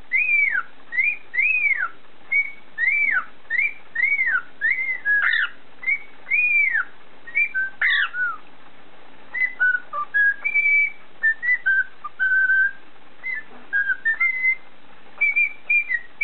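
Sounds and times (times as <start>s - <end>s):
cockatiel whistling: 0.1s - 8.4s, 9.3s - 14.6s, 15.2s - 16.2s.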